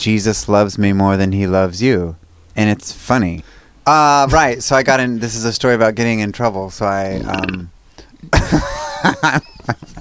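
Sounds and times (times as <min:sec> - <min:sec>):
speech: 0:00.0 - 0:07.7, 0:08.3 - 0:09.9
loud drawn-out rough voiced burp: 0:07.1 - 0:07.6
laughter: 0:08.3 - 0:09.9.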